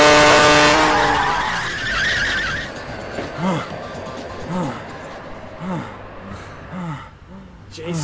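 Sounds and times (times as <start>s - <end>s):
uneven rumbling: 0.0s - 8.0s
car skidding with tires squealing: 0.6s - 5.5s.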